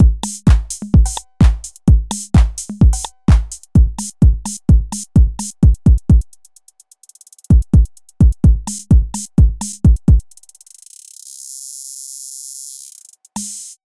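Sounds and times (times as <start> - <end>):
Roland TR-8 scatter: 0.0 - 6.2, 7.1 - 10.9, 12.8 - 13.8.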